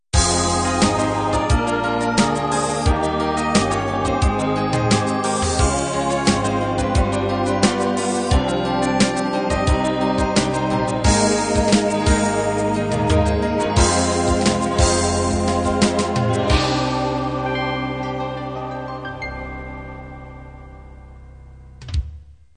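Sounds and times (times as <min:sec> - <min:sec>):
cinematic ballad music: 0:00.2 - 0:22.0.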